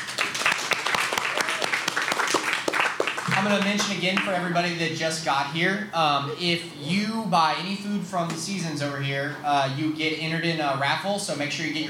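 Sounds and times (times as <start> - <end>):
crowd applause: 0.0 - 4.3
speech: 3.4 - 11.8.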